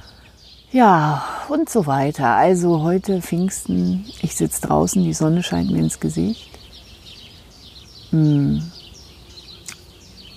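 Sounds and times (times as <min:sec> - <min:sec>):
birds chirping outdoors in sunshine: 0:00.0 - 0:10.3
speech: 0:00.7 - 0:06.6, 0:08.1 - 0:08.8
person humming: 0:08.1 - 0:08.8.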